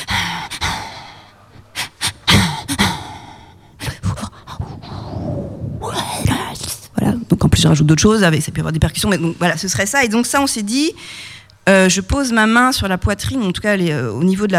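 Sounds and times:
person panting in quick rhythmic bursts: 0.0s - 5.1s
speech: 7.6s - 14.5s.

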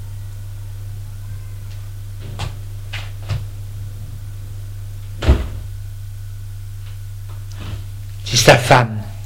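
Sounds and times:
steady low electrical hum: 0.0s - 9.2s
door thud: 5.2s - 5.7s
speech: 8.4s - 9.0s.

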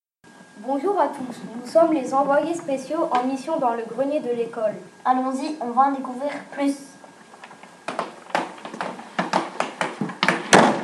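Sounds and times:
speech: 0.6s - 6.9s
hollow wooden knocks and clatters: 7.4s - 10.8s
door shutting with a thud: 7.9s - 10.8s.

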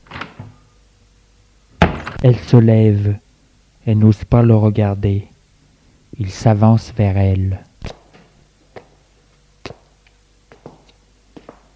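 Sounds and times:
door thumping: 1.8s - 2.2s
speech: 2.2s - 3.2s, 3.9s - 5.3s, 6.2s - 8.0s.

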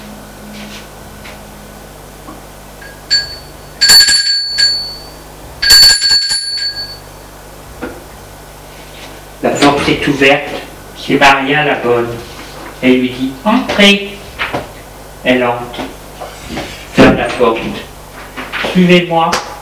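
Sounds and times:
doorbell ringing at a flat door on an upper floor: 2.8s - 7.2s
speech: 9.9s - 14.1s, 15.3s - 15.9s, 17.4s - 17.8s, 18.8s - 19.5s.

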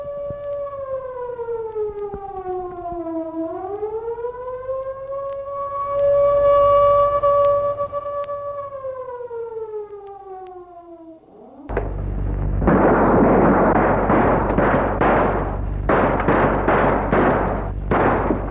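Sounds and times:
jewelry store alarm siren wailing: 0.0s - 18.4s
barrage of gunshots: 11.7s - 18.4s.

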